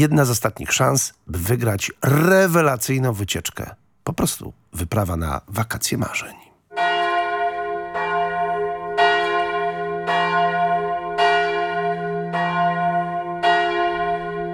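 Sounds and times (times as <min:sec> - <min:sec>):
speech: 0:00.0 - 0:06.9
church bells ringing in a steady peal: 0:06.7 - 0:14.5.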